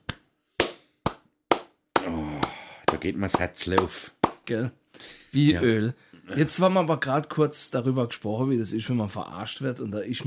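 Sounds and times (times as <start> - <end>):
hand claps: 0.0 - 4.5
speech: 3.0 - 10.2.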